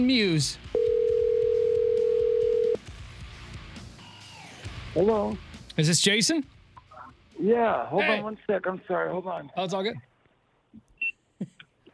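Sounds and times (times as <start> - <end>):
speech: 0.0 - 0.8, 5.0 - 6.6, 7.4 - 10.1
electronic phone ringing tone heard over the line while calling a cell phone: 0.8 - 2.8.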